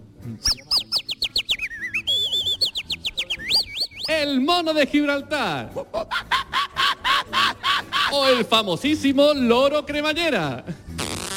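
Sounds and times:
speech: 0.3 - 0.6, 4.2 - 6.3, 8.1 - 10.8
canary singing: 0.4 - 4.3
laughter: 5.7 - 8.5.

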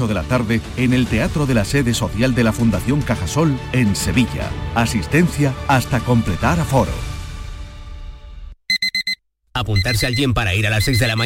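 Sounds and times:
speech: 0.0 - 7.1, 9.6 - 11.2
alarm clock beeping with loud electronic beeps: 8.7 - 11.2.

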